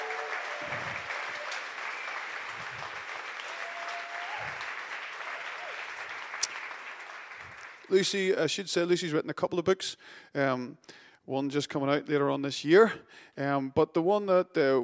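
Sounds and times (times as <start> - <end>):
crowd applauding to welcome a speaker in Lurgan: 0.0 - 8.2
speech: 7.9 - 14.8.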